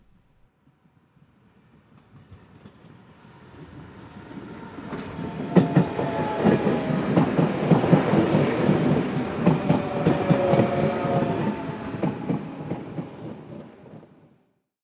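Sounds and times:
train passing: 0:03.1 - 0:14.3
wheels clacking on the rails: 0:04.9 - 0:13.7.

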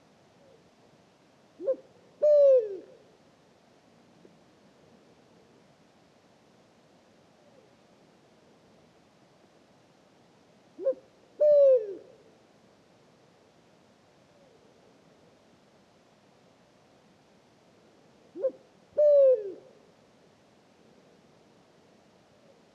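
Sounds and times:
Pharaoh eagle-owl Bubo ascalaphus singing two-note hoots at night in Mauritania: 0:01.6 - 0:03.0, 0:10.8 - 0:12.2, 0:18.4 - 0:19.8.

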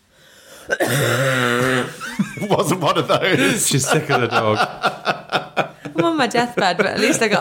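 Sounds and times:
ill woman coughing with a guttural rasp: 0:00.7 - 0:01.3
laughter: 0:02.0 - 0:07.4
speech: 0:02.5 - 0:04.9, 0:06.0 - 0:07.4.

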